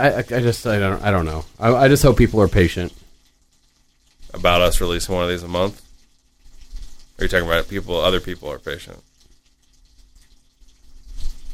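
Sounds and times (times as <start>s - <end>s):
speech: 0.0s - 3.0s, 4.3s - 5.8s, 7.2s - 9.1s
water running: 0.0s - 11.5s.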